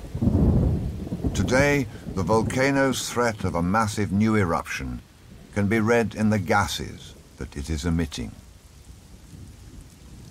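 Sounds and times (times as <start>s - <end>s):
deep low thunder rumble: 0.0s - 10.2s
steady rain pouring: 0.0s - 10.2s
speech: 1.4s - 8.4s.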